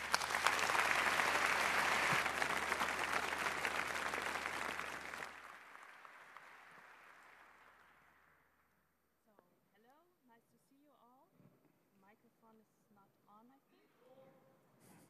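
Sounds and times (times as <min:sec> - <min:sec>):
crowd clapping in sustained applause: 0:00.0 - 0:08.3.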